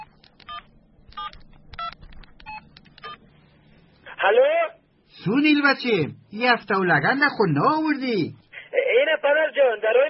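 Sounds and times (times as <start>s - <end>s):
mobile phone keypad tones while dialing a call: 0.0s - 3.2s
speech: 4.2s - 8.4s, 9.3s - 10.0s.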